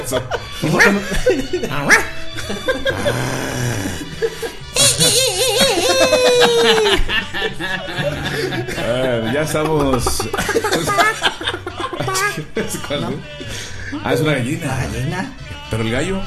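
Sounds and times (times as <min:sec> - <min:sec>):
speech: 0:00.0 - 0:11.4, 0:12.1 - 0:16.2
people laughing: 0:00.0 - 0:14.0
skinny potbellied ranch dog barking: 0:00.6 - 0:01.1, 0:01.8 - 0:02.1.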